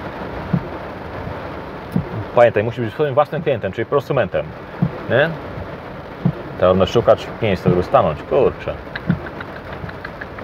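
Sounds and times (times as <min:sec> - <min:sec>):
rain falling: 0:00.0 - 0:10.4
dull thumps: 0:00.5 - 0:02.3, 0:04.8 - 0:06.5
speech: 0:02.4 - 0:05.5, 0:06.6 - 0:09.2.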